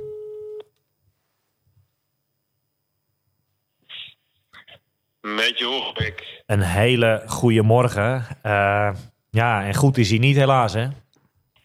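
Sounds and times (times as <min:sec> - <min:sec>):
telephone ringing tone while placing a call: 0:00.0 - 0:00.6
speech: 0:05.3 - 0:11.0.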